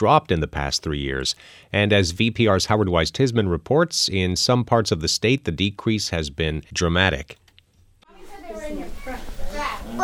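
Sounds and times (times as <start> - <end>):
speech: 0.0 - 7.5
toddlers chattering and babbling at an early education center: 8.1 - 10.0.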